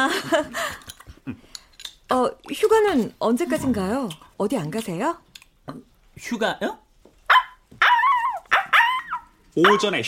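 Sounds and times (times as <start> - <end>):
speech: 0.0 - 1.4, 2.1 - 6.8, 9.6 - 10.0
small dog barking: 7.3 - 10.0.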